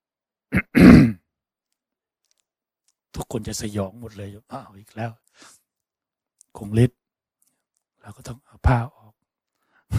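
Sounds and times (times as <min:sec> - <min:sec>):
monk clearing his throat: 0:00.5 - 0:01.2
speech: 0:03.2 - 0:05.6, 0:06.6 - 0:07.0, 0:08.0 - 0:09.0.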